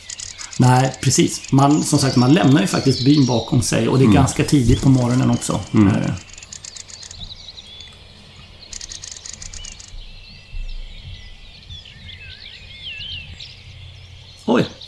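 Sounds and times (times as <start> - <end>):
crossbill chip calls outside a village: 0.0 - 8.1, 8.7 - 10.0
other birds twittering and warbling: 0.0 - 14.8
speech: 0.6 - 6.3.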